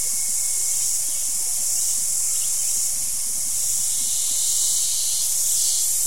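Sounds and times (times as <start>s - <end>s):
cicadas calling at the end of the day in a wet jungle in Costa Rica: 0.0s - 6.0s.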